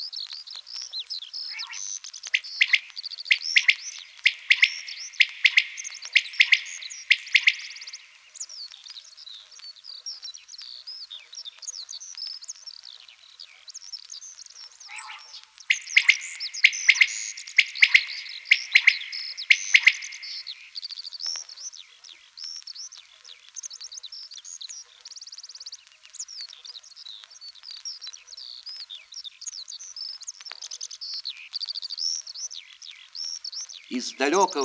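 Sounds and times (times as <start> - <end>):
other birds calling in an open field: 1.3 - 8.5, 13.8 - 23.6, 29.6 - 34.6
common quail calling in an open field: 1.5 - 8.2, 14.9 - 20.8, 33.9 - 34.6
speech: 34.0 - 34.6.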